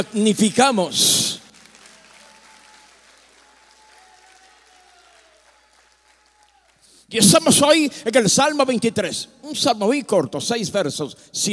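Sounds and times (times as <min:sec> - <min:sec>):
speech: 0:00.0 - 0:01.2, 0:07.1 - 0:11.5
audience applauding in worship: 0:00.0 - 0:07.0.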